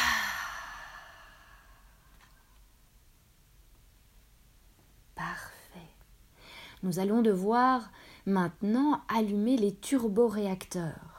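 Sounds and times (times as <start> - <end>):
deep breath in through the nose and out through the mouth during a guided breathing exercise: 0.0 - 2.6, 6.4 - 6.8
speech: 6.8 - 11.1.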